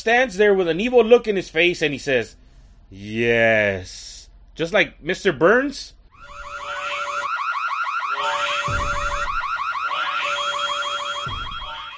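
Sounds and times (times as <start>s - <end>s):
speech: 0.0s - 6.0s
electronic alarm wailing with warbling cycling tones: 6.2s - 11.9s
steady high beep: 8.1s - 11.9s.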